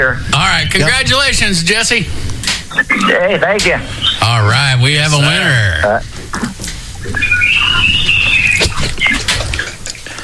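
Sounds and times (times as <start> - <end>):
speech: 0.0 - 8.2
busy rustling outdoor background over a phone line: 0.0 - 10.2
bird singing a long thin whistling phrase over a phone line: 3.8 - 4.4, 7.0 - 9.4.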